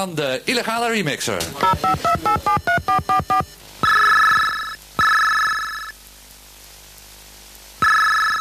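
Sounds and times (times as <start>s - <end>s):
speech: 0.0s - 3.6s
telephone electronic beeping tones: 1.6s - 5.9s
telephone ringing: 1.6s - 5.9s, 7.8s - 8.3s.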